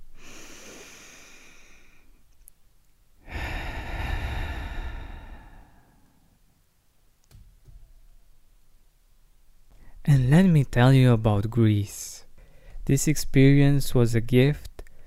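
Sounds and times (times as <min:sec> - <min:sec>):
faint hiss: 0:00.0 - 0:15.0
person breathing in deeply: 0:00.1 - 0:02.2, 0:03.2 - 0:06.4, 0:12.4 - 0:12.8
speech: 0:10.0 - 0:12.2, 0:12.8 - 0:14.7.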